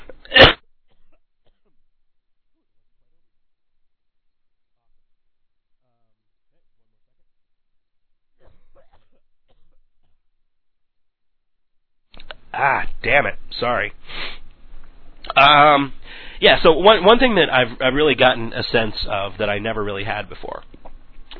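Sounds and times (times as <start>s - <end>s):
person coughing: 0.0s - 1.7s
speech: 12.6s - 14.4s, 15.3s - 20.7s.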